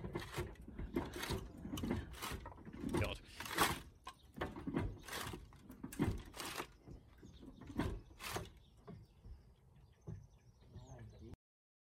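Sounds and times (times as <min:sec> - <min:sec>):
roof panel being moved by a man scraping and rattling: 0:00.0 - 0:09.2.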